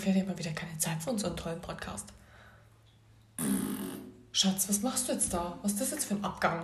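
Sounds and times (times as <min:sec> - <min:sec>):
speech: 0:00.0 - 0:02.2, 0:04.4 - 0:06.6
person imitating a fart with a buzzing raspberry: 0:03.4 - 0:04.3.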